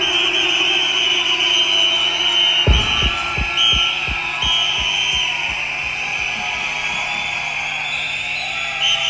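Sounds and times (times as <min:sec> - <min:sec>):
festival crowd blowing whistles: 0:00.0 - 0:09.0
deep rhythmic thumps: 0:02.7 - 0:06.8.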